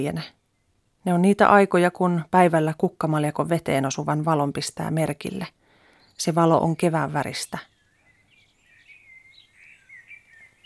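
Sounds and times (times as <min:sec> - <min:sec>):
speech: 0:00.0 - 0:00.4, 0:01.0 - 0:05.6, 0:06.2 - 0:07.7
faint hiss: 0:00.0 - 0:10.6
Eurasian blackbird singing softly: 0:06.0 - 0:10.6.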